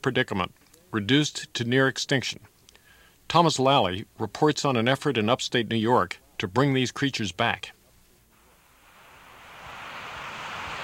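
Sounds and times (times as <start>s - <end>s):
speech: 0.0s - 2.5s, 3.3s - 7.8s
waterfall dropping about 90 feet into a pool: 8.6s - 10.8s.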